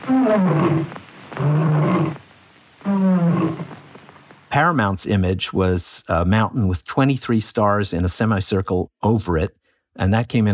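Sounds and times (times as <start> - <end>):
lion roaring: 0.0 - 2.2, 2.9 - 3.7
speech: 0.1 - 2.2, 4.6 - 10.5.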